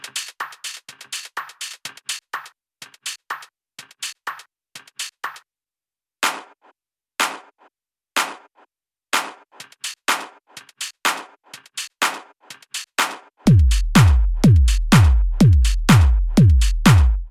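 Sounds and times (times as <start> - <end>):
programmed drum beat: 0.0 - 5.4, 9.2 - 17.2.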